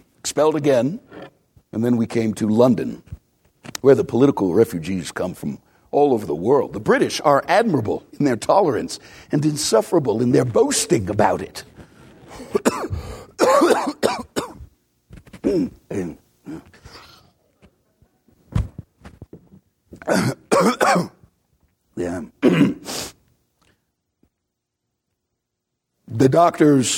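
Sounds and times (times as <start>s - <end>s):
speech: 0.2s - 3.2s, 3.8s - 11.7s, 15.5s - 16.7s, 20.0s - 21.1s, 26.2s - 26.9s
person coughing harshly: 12.4s - 14.6s, 15.4s - 17.3s, 20.0s - 21.2s, 22.4s - 23.0s
person clearing throat: 12.4s - 14.7s, 15.3s - 17.3s, 20.0s - 21.2s, 22.4s - 23.0s.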